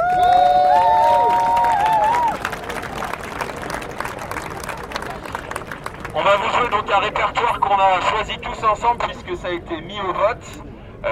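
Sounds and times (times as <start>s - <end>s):
audience cheering: 0.0s - 6.4s
audience applause: 0.0s - 6.8s
speech: 6.9s - 11.0s.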